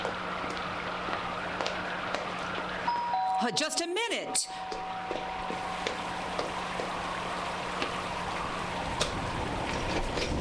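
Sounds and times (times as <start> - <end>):
steady rain hissing outside: 0.0 - 3.0, 4.5 - 10.3
speech: 3.4 - 5.4.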